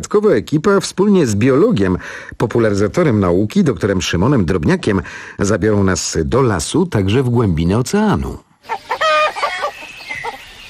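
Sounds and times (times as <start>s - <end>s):
speech: 0.0s - 8.9s
hens clucking: 8.6s - 10.6s
roosters crowing: 8.6s - 10.6s.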